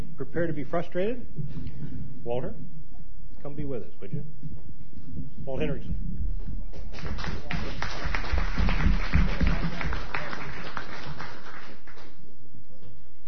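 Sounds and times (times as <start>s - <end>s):
speech: 0.4s - 1.6s, 2.2s - 2.7s, 3.4s - 4.6s, 5.5s - 6.0s, 7.0s - 7.8s
audience clapping: 6.7s - 12.3s.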